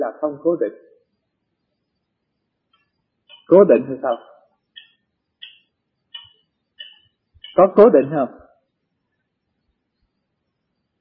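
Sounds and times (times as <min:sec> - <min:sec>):
speech: 0:00.0 - 0:00.9, 0:03.5 - 0:04.3, 0:07.6 - 0:08.4
clock on a table ticking: 0:03.3 - 0:08.3.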